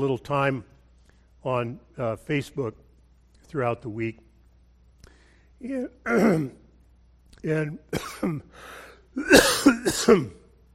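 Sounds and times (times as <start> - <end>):
speech: 0.0 - 0.7, 1.4 - 2.8, 3.5 - 4.2, 5.6 - 6.6, 7.4 - 10.4
person clearing throat harshly, something stuck in the throat: 6.0 - 6.7, 7.9 - 8.6, 9.2 - 10.5.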